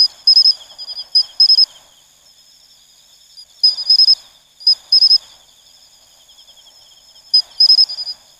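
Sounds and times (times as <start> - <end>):
pine cricket (matsumushi) giving bell-like chirps: 0.0 - 2.4, 3.2 - 8.3
faint steady insect whine: 0.0 - 8.3.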